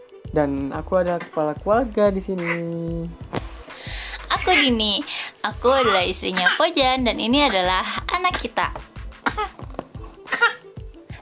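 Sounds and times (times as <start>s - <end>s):
speech: 0.4s - 3.3s, 4.4s - 9.5s
young child coughing: 5.8s - 6.7s, 8.3s - 8.6s, 9.2s - 9.5s, 10.3s - 10.6s.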